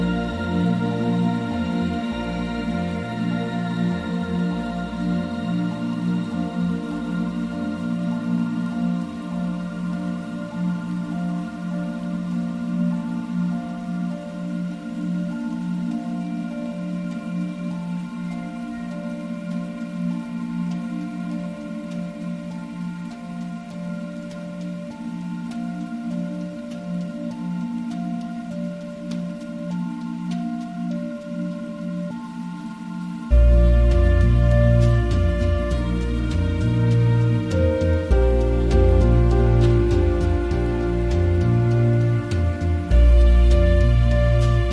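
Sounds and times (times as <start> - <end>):
gently pulsing low bass line: 0.0 - 10.5, 33.3 - 44.6
slow soft music of held ringing tones: 0.0 - 44.6.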